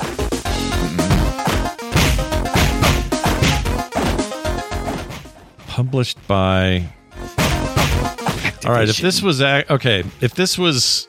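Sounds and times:
video game music: 0.0s - 11.0s
beat 'em up video game punching effects: 0.9s - 4.3s, 7.4s - 8.4s
speech: 5.8s - 7.0s, 8.6s - 11.0s.

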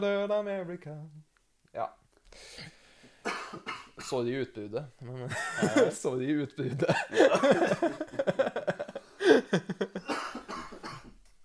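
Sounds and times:
speech: 0.0s - 9.9s
person coughing: 3.2s - 4.1s, 10.0s - 11.2s
laughter: 6.7s - 10.1s.

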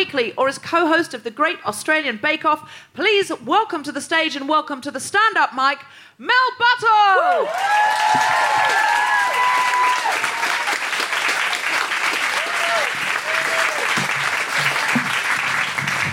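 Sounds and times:
speech: 0.0s - 9.5s
cheers and whoops: 7.0s - 11.0s, 12.2s - 14.0s
large audience applause: 7.3s - 16.1s.

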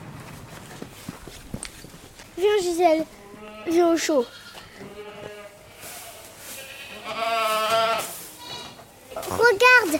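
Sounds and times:
speech: 2.4s - 4.4s
baby goats bleating: 3.2s - 9.6s.

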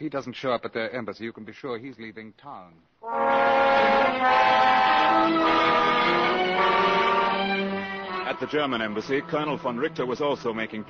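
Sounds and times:
speech: 0.0s - 7.2s, 8.4s - 10.8s
train horn at a railroad station: 3.0s - 7.8s.

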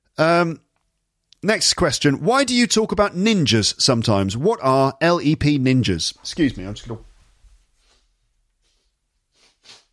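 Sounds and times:
speech: 0.2s - 0.6s, 1.4s - 7.1s
soft rustling of a nose being wiped: 7.8s - 9.9s
sniffing through the nose: 8.6s - 9.9s.

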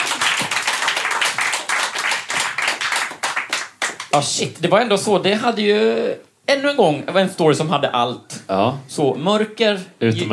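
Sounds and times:
crowd applauding: 0.0s - 4.2s
speech: 4.1s - 10.3s.

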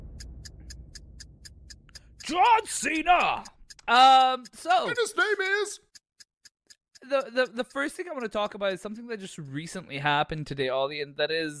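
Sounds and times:
low constant rumble: 0.0s - 2.2s
clock ticking: 0.0s - 10.8s
speech: 2.3s - 5.8s, 7.0s - 11.5s.

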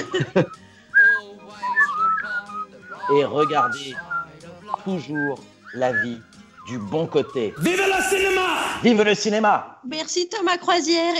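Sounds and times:
laughter: 0.0s - 0.6s
person whistling a cheerful melody: 0.0s - 7.9s
speech: 0.1s - 0.6s, 3.1s - 4.1s, 4.8s - 11.1s.

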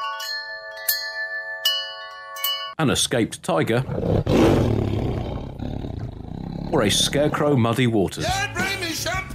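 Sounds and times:
wind chime ringing with bright metallic tones: 0.0s - 2.8s
speech: 2.8s - 5.0s, 6.7s - 9.2s.

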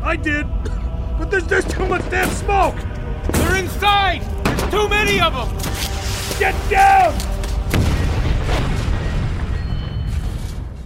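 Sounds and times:
speech: 0.1s - 7.4s
explosion of rocket striking a diesel tanker: 7.7s - 10.8s.

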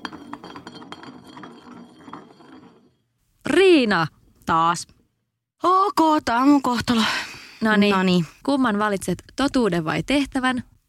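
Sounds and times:
glass bottle spinning on a surface: 0.0s - 3.2s
speech: 3.4s - 5.0s, 5.6s - 10.7s.

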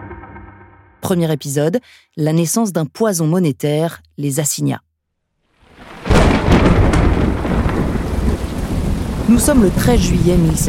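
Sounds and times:
speech: 1.1s - 4.9s, 9.3s - 10.6s
pouring rain in a thunderstorm: 5.6s - 10.6s
thunder crack and rolling thunder: 5.7s - 10.6s.

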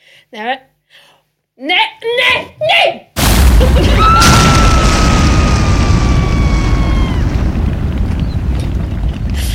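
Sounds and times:
speech: 0.2s - 0.7s
fireball roaring whoosh from sauce catching fire: 3.2s - 9.5s.

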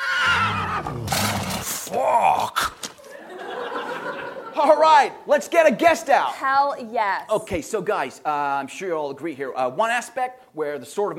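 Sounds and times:
horse neighing: 0.0s - 2.4s
speech: 0.9s - 1.3s, 4.6s - 11.1s
laughter: 3.0s - 4.8s.

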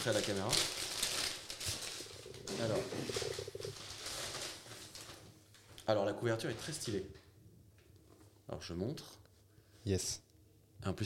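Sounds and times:
speech: 0.0s - 0.9s, 2.5s - 3.5s, 5.9s - 7.2s, 8.5s - 9.2s, 9.8s - 10.2s, 10.8s - 11.0s
gift-wrapping paper crinkling and tearing as a book is unwrapped: 0.0s - 5.7s, 6.4s - 7.1s.

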